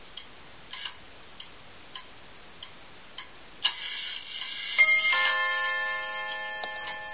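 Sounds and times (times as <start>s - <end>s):
bell striking: 4.8s - 7.1s.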